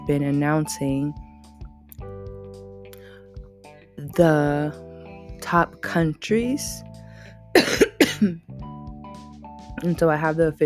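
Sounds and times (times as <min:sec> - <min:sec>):
speech: 0:00.1 - 0:01.2, 0:04.1 - 0:04.8, 0:05.5 - 0:06.9, 0:07.6 - 0:08.6, 0:09.8 - 0:10.6
person coughing: 0:07.6 - 0:08.4.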